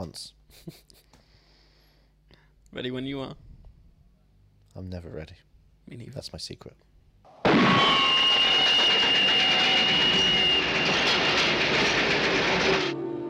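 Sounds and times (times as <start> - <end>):
speech: 0.0 - 1.0, 2.7 - 3.5, 4.8 - 6.8
train rumbling along railroad tracks: 8.0 - 13.2.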